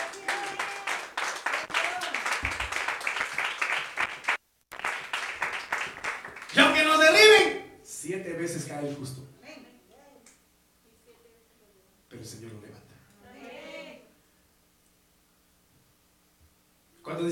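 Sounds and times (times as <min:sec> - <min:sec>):
crowd voices cheering and calling out: 0:00.0 - 0:02.3, 0:13.2 - 0:14.1
audience clapping hands: 0:00.0 - 0:07.1
speech: 0:08.2 - 0:09.3.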